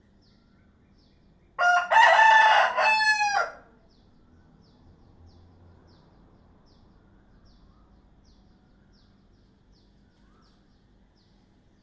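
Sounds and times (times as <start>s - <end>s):
rooster crowing: 1.6s - 3.8s.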